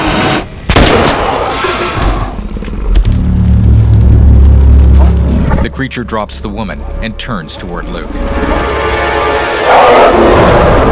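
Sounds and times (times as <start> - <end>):
dense low rumbling: 0.0 - 10.8
rifle fired at a creature on a dark path: 0.7 - 1.6
speech: 5.8 - 8.8.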